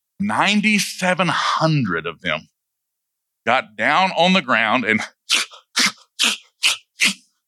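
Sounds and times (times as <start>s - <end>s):
speech: 0.2s - 2.5s, 3.4s - 5.5s
person mimicking a dog lapping water: 5.0s - 7.3s.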